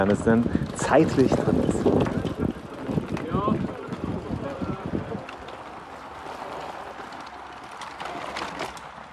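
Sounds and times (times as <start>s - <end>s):
speech: 0.0s - 2.0s
wind buffeting the microphone: 0.0s - 5.8s
bicycle rattling over pavé cobblestones in Flanders Belgium at a world championship: 0.0s - 9.1s.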